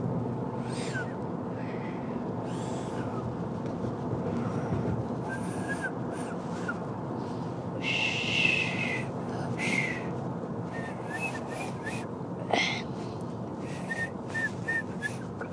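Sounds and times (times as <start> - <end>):
steady rushing noise: 0.0 - 15.5
person whistling short high notes: 5.3 - 6.0, 10.8 - 12.0, 13.8 - 15.2.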